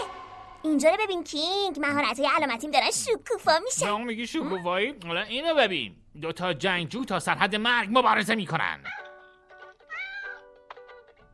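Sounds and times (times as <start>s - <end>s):
speech: 0.6s - 9.0s
cat meowing in an online cat video: 9.8s - 10.5s.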